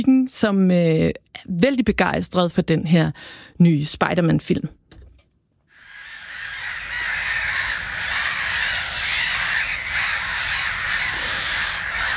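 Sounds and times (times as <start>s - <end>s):
speech: 0.0s - 4.8s
black-headed gulls calling in a dense chorus: 5.7s - 12.1s.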